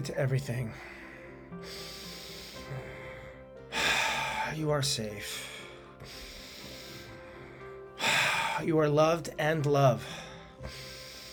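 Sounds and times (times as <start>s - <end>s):
speech: 0.0s - 2.0s, 2.7s - 2.9s, 4.5s - 6.2s, 8.6s - 10.8s
soft steady tonal background: 0.0s - 11.3s
breathing in through the nose: 0.7s - 4.6s, 5.2s - 8.7s, 10.0s - 11.3s.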